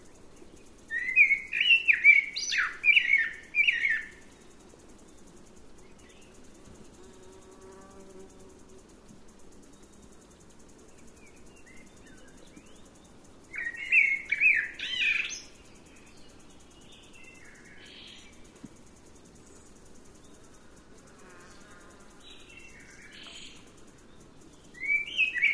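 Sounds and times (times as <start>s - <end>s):
Eurasian blackbird Turdus merula song: 0.3s - 4.5s, 9.8s - 18.4s, 22.3s - 25.5s.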